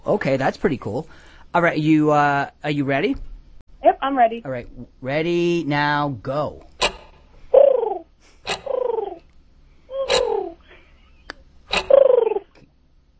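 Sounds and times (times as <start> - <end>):
speech: 0.1 - 3.3, 4.0 - 6.7
person imitating pigeon cooing with sharp clicks: 7.6 - 9.3, 9.9 - 10.7, 11.8 - 12.6.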